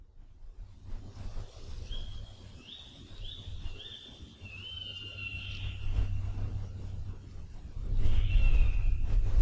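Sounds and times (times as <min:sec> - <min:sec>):
tawny owl calling: 0:03.2 - 0:06.3, 0:08.0 - 0:09.3.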